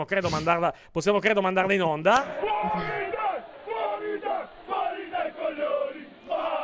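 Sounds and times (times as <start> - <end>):
speech: 0.0 - 3.2
group of men cheering and shouting in a locker room: 2.2 - 6.6.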